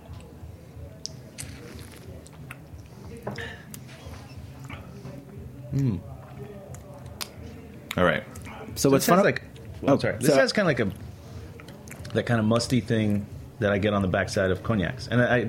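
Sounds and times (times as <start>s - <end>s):
sipping rum from a glass: 1.1s - 2.3s
speech: 5.8s - 6.1s, 8.0s - 11.0s, 12.2s - 15.4s.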